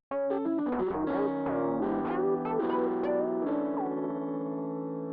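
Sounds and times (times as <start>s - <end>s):
piano jingle: 0.2s - 5.0s.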